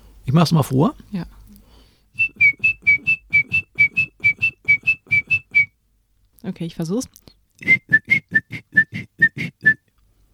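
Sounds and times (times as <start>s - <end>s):
speech: 0.3s - 1.4s, 6.6s - 7.8s
person whistling an imitation of a great tit's song: 2.2s - 5.7s, 7.6s - 9.8s.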